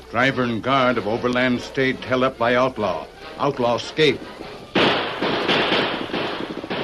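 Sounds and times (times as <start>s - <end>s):
speech: 0.1s - 4.4s
revolver gunshots in a western radio drama: 4.7s - 6.8s.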